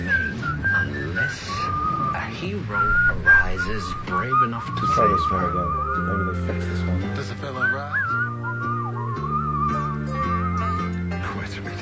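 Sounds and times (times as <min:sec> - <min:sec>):
person whistling a wavering tune: 0:00.0 - 0:11.2
speech: 0:02.4 - 0:08.2
low steady backing of sustained notes: 0:02.6 - 0:11.3.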